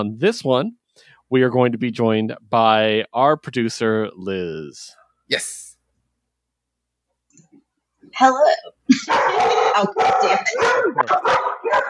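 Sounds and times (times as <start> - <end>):
speech: 0.0 - 5.7, 8.1 - 11.8
dog barking and yipping: 9.0 - 11.8.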